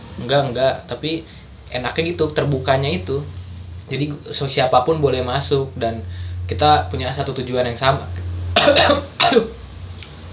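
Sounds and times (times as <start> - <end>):
low steady hum: 0.0 - 10.3
speech: 0.2 - 9.6
person coughing harshly: 8.6 - 9.6
throat clearing: 8.6 - 9.6.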